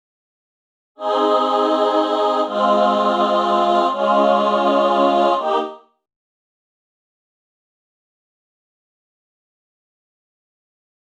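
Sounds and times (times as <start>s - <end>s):
female chamber choir singing: 1.0s - 6.0s.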